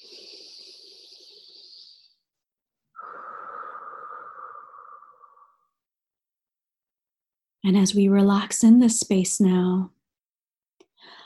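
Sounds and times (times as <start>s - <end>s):
deep breaths during a guided relaxation exercise: 0.0s - 2.2s, 3.0s - 5.6s, 11.0s - 11.2s
speech: 7.7s - 10.0s.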